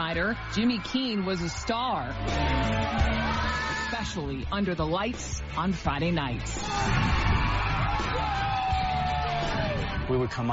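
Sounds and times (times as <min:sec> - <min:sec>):
people yelling and whooping in a stadium crowd: 0:00.0 - 0:04.2, 0:06.6 - 0:10.5
big stadium crowd roaring at a football game: 0:00.0 - 0:04.3, 0:06.6 - 0:10.5
speech: 0:00.1 - 0:10.5.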